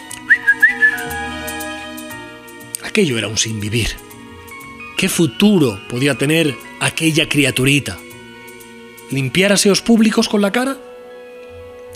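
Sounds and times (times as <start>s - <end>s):
soft sustained musical backing: 0.0s - 11.9s
bright whistle chirps as if calling a dog: 0.1s - 2.0s
speech: 3.0s - 4.1s, 5.0s - 8.0s, 9.1s - 10.9s.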